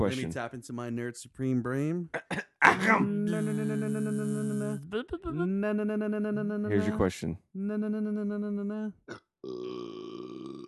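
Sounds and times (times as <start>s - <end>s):
speech: 0.0s - 9.6s
long loud droning burp: 9.1s - 10.6s.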